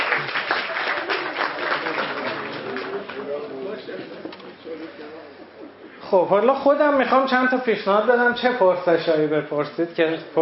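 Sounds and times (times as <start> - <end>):
audience applause: 0.0 - 3.4
speech: 6.1 - 10.4.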